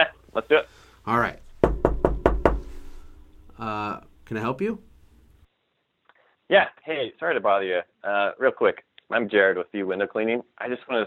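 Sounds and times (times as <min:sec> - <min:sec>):
speech: 0:00.0 - 0:01.4, 0:03.6 - 0:04.9, 0:06.5 - 0:11.0
firm knocks on a door: 0:01.5 - 0:03.3.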